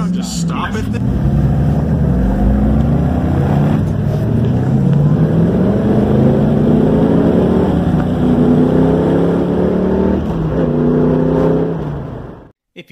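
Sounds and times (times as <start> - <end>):
car engine revving sound effect: 0.0 - 12.5
speech: 0.2 - 1.4.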